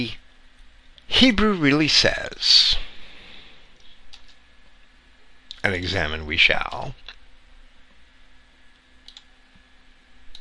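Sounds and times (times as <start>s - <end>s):
speech: 0.0s - 0.2s, 1.1s - 2.8s, 5.6s - 7.1s
low steady hum: 0.0s - 10.3s
computer keyboard clicks: 9.0s - 9.3s.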